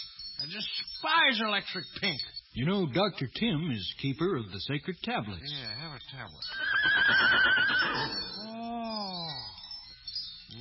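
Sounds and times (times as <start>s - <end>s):
speech: 0.5s - 8.4s
horse whinnying: 6.5s - 8.5s.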